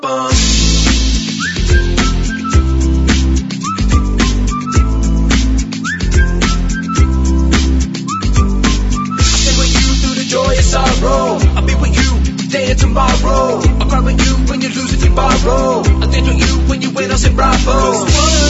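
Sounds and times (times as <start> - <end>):
whistle blown in short rising toots: 0.3 - 11.2
loud thumping drum-and-bass beat: 0.3 - 18.4.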